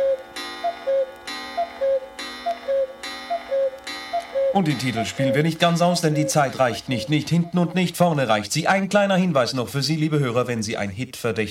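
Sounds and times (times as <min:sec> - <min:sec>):
clock striking twelve noon: 0:00.0 - 0:08.4
speech: 0:04.5 - 0:11.4.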